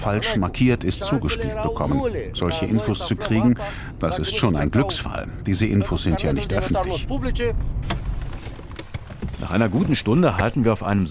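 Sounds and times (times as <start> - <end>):
speech: 0.0 - 8.1, 9.4 - 11.1
keys jingling: 8.3 - 10.2.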